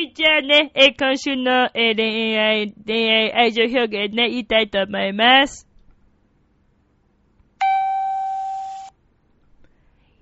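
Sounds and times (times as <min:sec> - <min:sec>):
speech: 0:00.0 - 0:05.7
single bright electronic chime: 0:07.6 - 0:08.9.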